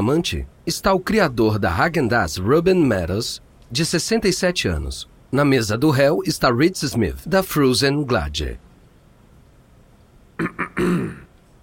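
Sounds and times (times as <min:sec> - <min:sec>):
speech: 0:00.0 - 0:08.6
judge clearing his throat in a US District Court in Manhattan: 0:10.4 - 0:11.4.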